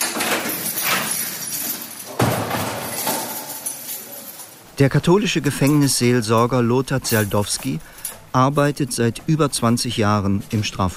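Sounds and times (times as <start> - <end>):
heavy prison door slamming with a sharp metallic clang: 0.0 - 3.6
speech: 4.8 - 10.9.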